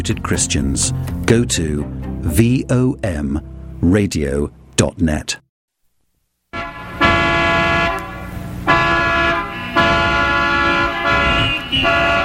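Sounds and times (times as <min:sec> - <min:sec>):
speech: 0:00.0 - 0:05.4
several car horns honking: 0:06.5 - 0:12.2.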